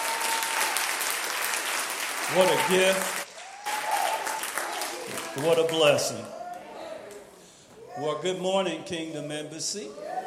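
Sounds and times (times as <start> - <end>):
audience applause: 0.0 - 6.3
speech: 2.3 - 3.2, 5.4 - 6.4, 8.0 - 10.2.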